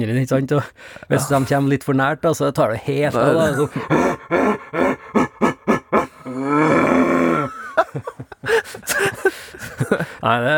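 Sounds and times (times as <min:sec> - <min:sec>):
speech: 0:00.0 - 0:05.0, 0:10.2 - 0:10.5
man imitating a rutting red deer stag's grunts and roar: 0:01.1 - 0:01.7, 0:03.1 - 0:07.7
laughter: 0:03.2 - 0:10.4.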